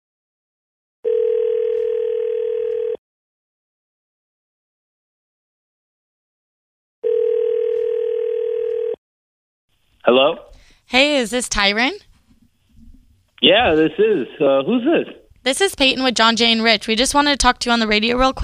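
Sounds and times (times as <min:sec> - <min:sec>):
telephone ringback tone through the handset: 0:01.0 - 0:03.0, 0:07.0 - 0:09.0
speech: 0:10.1 - 0:12.1, 0:13.4 - 0:18.4.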